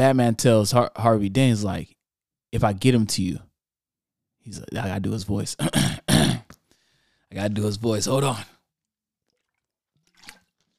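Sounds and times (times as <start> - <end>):
speech: 0.0 - 3.5, 4.4 - 6.4, 7.3 - 8.5
person swallowing: 5.6 - 6.6
wet sips of water: 9.2 - 10.7.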